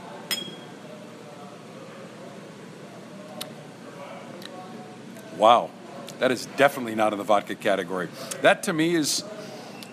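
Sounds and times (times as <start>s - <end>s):
low steady murmur: 0.0s - 9.9s
glasses clinking in a toast at a vanilla vodka tasting: 0.3s - 0.7s
speech: 5.4s - 9.4s.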